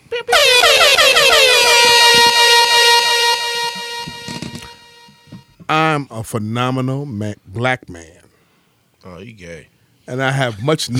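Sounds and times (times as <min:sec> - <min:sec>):
air horn blast: 0:00.2 - 0:05.5
speech: 0:06.2 - 0:08.3, 0:09.0 - 0:10.9.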